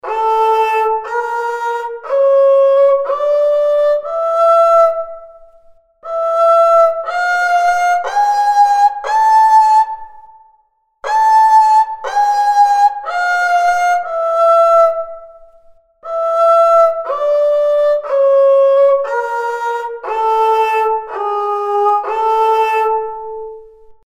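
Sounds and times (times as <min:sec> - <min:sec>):
kemençe playing in zirgüle mode: 0:00.0 - 0:24.0.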